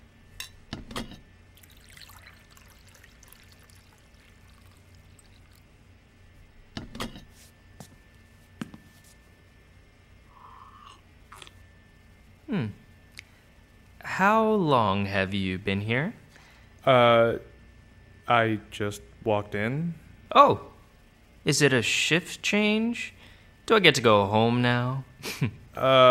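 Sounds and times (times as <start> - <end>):
water poured into a glass: 1.6 - 5.7
speech: 14.2 - 16.2, 16.8 - 17.5, 18.3 - 20.7, 21.5 - 26.0.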